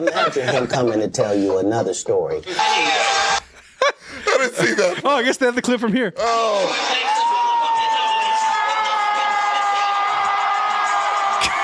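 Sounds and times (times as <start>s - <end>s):
laughter: 0.0s - 1.1s, 2.5s - 5.3s, 11.3s - 11.6s
speech: 0.0s - 3.4s, 4.7s - 7.1s
large comedy show crowd cheering wildly: 2.5s - 3.5s, 6.4s - 11.6s.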